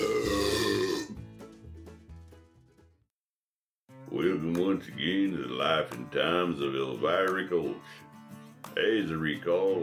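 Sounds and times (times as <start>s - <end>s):
loud resonant belch: 0.0s - 1.2s
speech: 4.1s - 8.1s, 8.7s - 9.8s.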